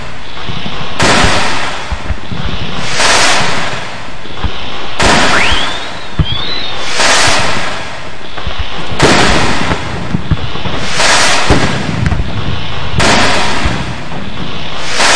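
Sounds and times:
M80 firework explosions blowing up watermelons: 0.0s - 15.1s
dense crackling roar: 0.0s - 15.1s
rising whistle: 5.2s - 7.3s.

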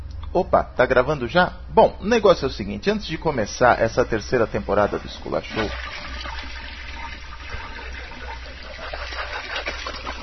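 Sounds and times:
speech: 0.3s - 6.5s
toilet flushing: 3.7s - 10.2s.

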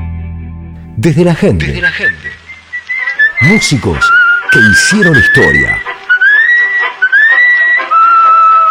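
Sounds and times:
speech: 1.0s - 2.4s, 3.4s - 5.9s
man whistling a melody in long steady held notes: 1.9s - 8.7s.

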